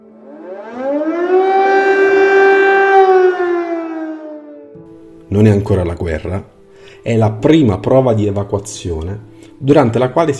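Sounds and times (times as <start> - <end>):
air raid siren wailing: 0.0 - 5.2
speech: 5.4 - 10.3.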